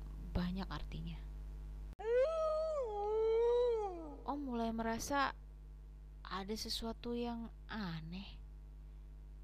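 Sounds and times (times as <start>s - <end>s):
steady low hum: 0.0s - 9.4s
speech: 0.4s - 1.3s, 4.3s - 5.4s, 6.2s - 8.4s
wild dog howling at night in a cold wind: 2.0s - 4.3s.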